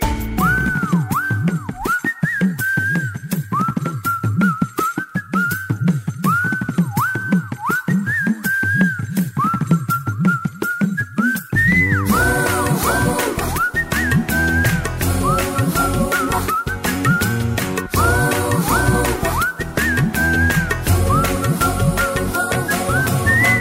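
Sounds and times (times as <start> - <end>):
person whistling: 0.4 - 23.5.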